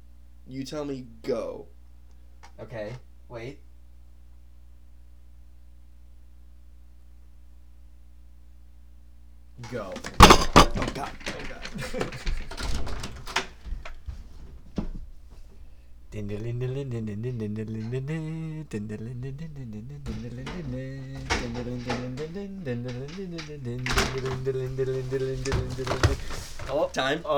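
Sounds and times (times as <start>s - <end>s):
speech: 0.5s - 1.8s, 2.5s - 3.7s, 9.6s - 12.4s, 16.1s - 27.3s
door being knocked down: 10.1s - 13.4s, 20.0s - 26.6s
scattered knocks: 10.2s - 11.1s, 19.5s - 26.5s.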